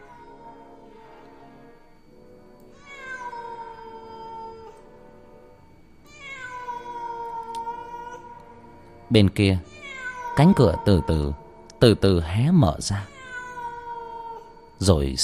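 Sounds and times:
steady low noise: 0.0 - 15.2
cat meowing outside: 2.7 - 4.8, 6.0 - 8.4, 9.6 - 11.4, 12.9 - 14.6
speech: 9.1 - 9.7, 10.4 - 13.1, 14.8 - 15.2.

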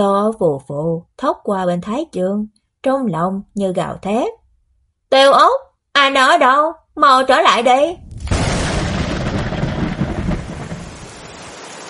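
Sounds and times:
speech: 0.0 - 4.4, 5.1 - 8.1
heavy pouring rain: 8.0 - 11.8.

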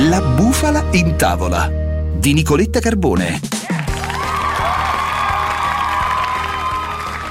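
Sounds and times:
speech: 0.1 - 3.6
crowd clapping: 3.5 - 7.2.

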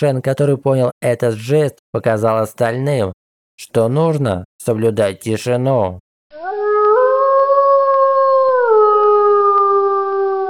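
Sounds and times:
speech: 0.0 - 6.6
beast howling: 6.4 - 10.4.

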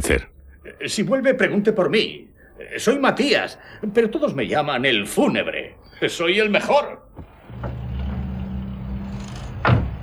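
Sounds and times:
speech: 0.1 - 7.7
car engine starting and running: 7.3 - 10.0.

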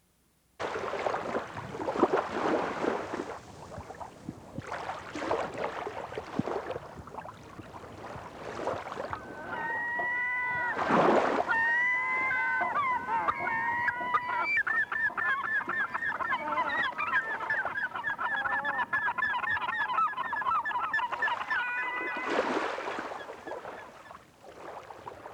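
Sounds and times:
wash of the waves: 0.6 - 17.8
sea murmur: 0.6 - 24.1
seagulls calling over the water: 8.6 - 23.8.

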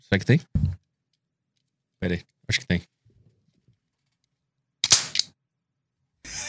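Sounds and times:
speech: 0.1 - 0.6, 2.0 - 3.0
sniper rifle shot in a video game: 4.8 - 5.3.

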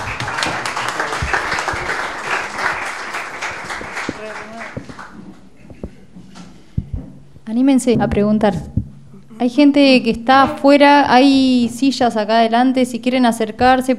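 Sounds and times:
audience applause at a public talk on journalism: 0.0 - 5.2
speech: 7.5 - 8.7, 9.4 - 13.9.

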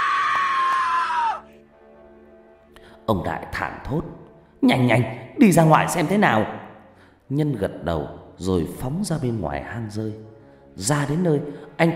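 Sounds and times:
terrified shrill scream for help at night: 0.0 - 1.5
speech: 3.1 - 6.6, 7.3 - 11.9.

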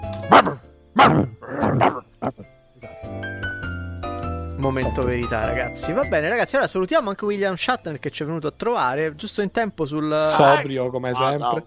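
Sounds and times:
speech: 0.3 - 1.2, 4.8 - 11.6
dog barking: 0.3 - 2.4.

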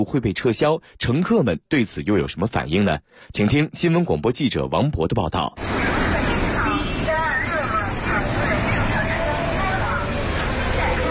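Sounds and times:
speech: 0.0 - 6.3
city bus engine pulling into a stop: 5.6 - 11.0
people chattering: 5.6 - 11.0.

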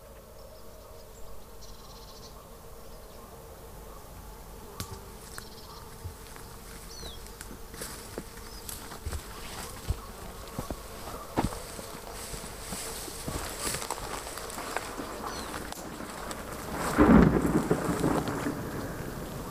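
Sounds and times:
faint insect-like hum: 0.0 - 19.4
scattered crackles: 4.8 - 19.4
rain patter: 14.5 - 19.4
distant thunderclap in a thunderstorm: 15.8 - 19.4.

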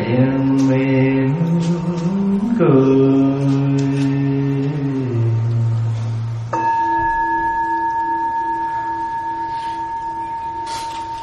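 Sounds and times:
low chanting voice: 0.0 - 6.7
speech: 0.1 - 0.7, 2.6 - 3.4
mindfulness bell struck in a Buddhist setting: 6.5 - 11.2.

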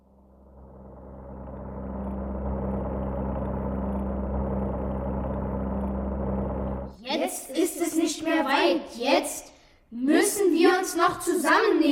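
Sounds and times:
airplane engine running on an ocean flight: 0.0 - 6.9
speech: 7.1 - 11.9.

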